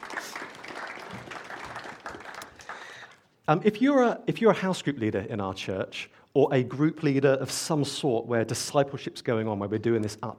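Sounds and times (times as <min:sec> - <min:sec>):
church audience applauding a speaker: 0:00.0 - 0:03.3
speech: 0:03.5 - 0:10.3.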